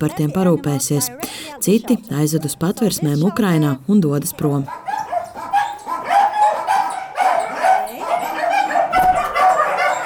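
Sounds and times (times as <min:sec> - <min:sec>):
speech: 0:00.0 - 0:04.9
dogs from Ukraine barking in large cages in an animal shelter's shed: 0:04.6 - 0:10.0.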